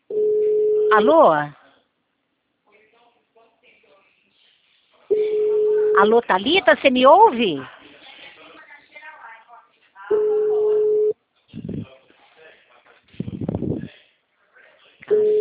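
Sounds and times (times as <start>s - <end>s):
telephone busy signal: 0.1s - 1.1s, 5.1s - 6.1s, 10.1s - 11.1s, 15.1s - 15.3s
speech: 0.9s - 1.6s, 6.0s - 7.7s.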